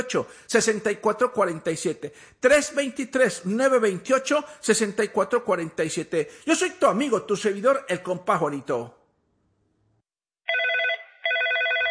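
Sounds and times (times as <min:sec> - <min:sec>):
speech: 0:00.0 - 0:09.0
telephone ringing with an incoming call: 0:10.5 - 0:11.9.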